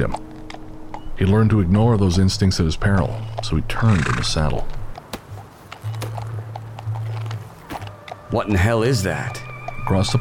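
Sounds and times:
speech: 0.0 - 0.3, 1.2 - 4.8, 8.3 - 10.1
horse hooves clip-clopping at an ambling walk: 0.0 - 10.1.

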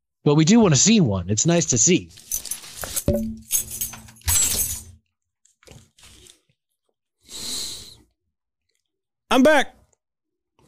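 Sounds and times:
speech: 0.2 - 2.5, 3.1 - 3.7, 9.3 - 9.8
keys jingling and clinking: 2.1 - 5.0.

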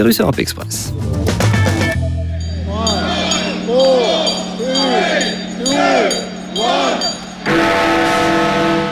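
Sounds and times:
speech: 0.0 - 1.4
large outdoor crowd murmuring and cheering: 1.9 - 8.6
deep clock tower bells chiming at midnight: 1.9 - 8.9.

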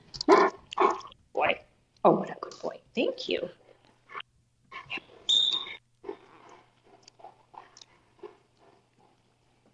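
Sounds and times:
puppy yapping barks: 0.2 - 1.1
speech: 2.9 - 3.6
puppy whimpering: 4.7 - 5.8.

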